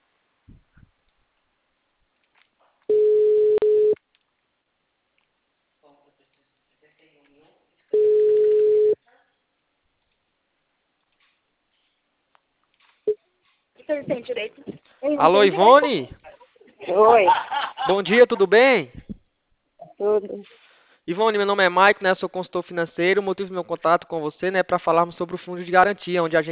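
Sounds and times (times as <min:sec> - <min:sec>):
telephone ringback tones of an unanswered call: 0:02.9 - 0:04.0, 0:08.0 - 0:09.0
speech: 0:13.9 - 0:16.2, 0:16.9 - 0:19.0, 0:20.0 - 0:26.4
laughter: 0:15.6 - 0:18.6.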